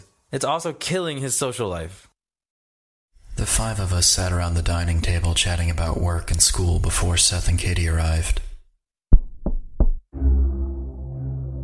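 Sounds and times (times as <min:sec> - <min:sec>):
speech: 0:00.3 - 0:02.1, 0:03.4 - 0:08.5
firm knocks on a door: 0:09.1 - 0:10.0
low steady droning rumble: 0:10.2 - 0:11.6.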